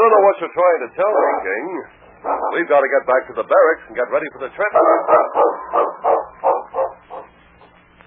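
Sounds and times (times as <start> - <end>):
speech: 0.0 - 6.0
lead sled dog barking: 2.2 - 2.7, 4.7 - 7.7.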